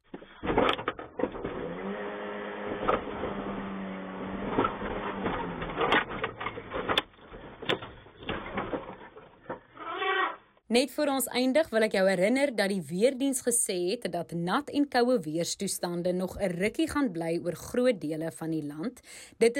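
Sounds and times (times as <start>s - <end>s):
rustling commotion: 0.0s - 10.3s
elephant bull's tusks striking a pickup truck bonnet: 2.7s - 9.8s
speech: 10.8s - 19.5s.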